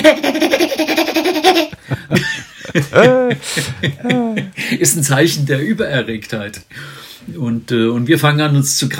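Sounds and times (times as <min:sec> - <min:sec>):
spotted hyena giggling call: 0:00.9 - 0:04.6
speech: 0:02.8 - 0:08.9.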